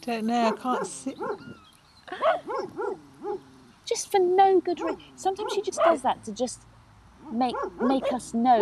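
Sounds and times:
speech: 0:00.0 - 0:08.6
female Rottweiler-mix guard dog barking: 0:00.5 - 0:01.6, 0:02.2 - 0:03.4, 0:04.8 - 0:06.1, 0:07.2 - 0:08.6.

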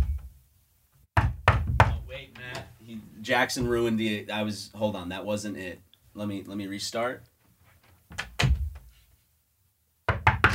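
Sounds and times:
knocking on a door: 0:01.2 - 0:02.1, 0:10.1 - 0:10.5
speech: 0:02.2 - 0:07.3.

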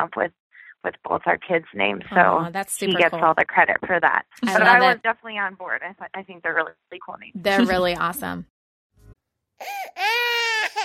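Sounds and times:
speech: 0:00.0 - 0:08.5, 0:09.6 - 0:10.8
laughter: 0:04.4 - 0:05.0
baby crying: 0:09.6 - 0:10.8.

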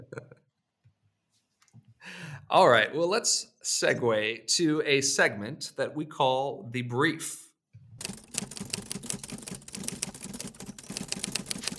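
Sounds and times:
speech: 0:02.5 - 0:07.4
old Underwood manual typewriter typing a brief: 0:08.0 - 0:11.7.

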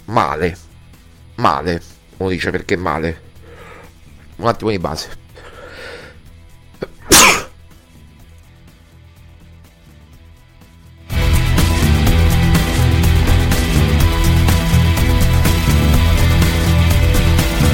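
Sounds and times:
dense steady wash of music: 0:00.0 - 0:17.7
speech: 0:00.1 - 0:00.7, 0:01.4 - 0:03.3, 0:04.4 - 0:05.2
person sneezing: 0:06.8 - 0:07.6.

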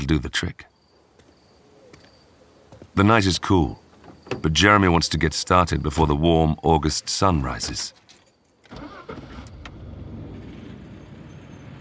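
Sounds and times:
speech: 0:00.1 - 0:00.7, 0:03.0 - 0:08.0
truck engine cranking and starting: 0:08.7 - 0:11.7.

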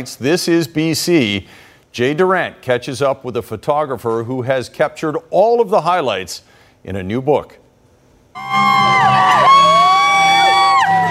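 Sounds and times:
speech: 0:00.0 - 0:07.6, 0:08.4 - 0:09.8
music festival crowd screaming and cheering: 0:08.4 - 0:11.0.

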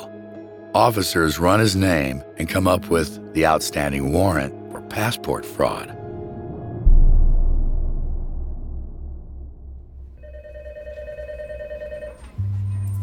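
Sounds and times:
speech: 0:00.8 - 0:06.0
low rumbling hum: 0:06.0 - 0:10.2
telephone ringing in a tiny office by an elevator shaft: 0:10.2 - 0:12.5.

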